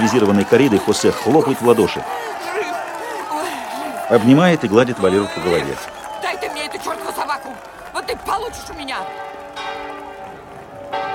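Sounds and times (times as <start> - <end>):
speech: 0.0 - 2.5, 4.1 - 6.4
laughter: 0.0 - 8.2
church bell swinging in the upper tier of a bell tower: 8.9 - 11.1.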